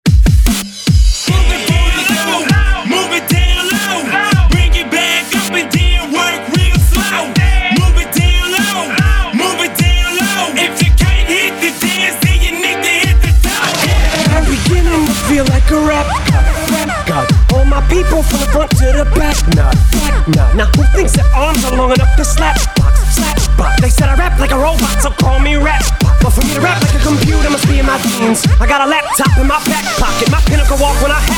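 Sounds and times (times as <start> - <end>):
classic hip hop hype music: 0.0 - 31.3.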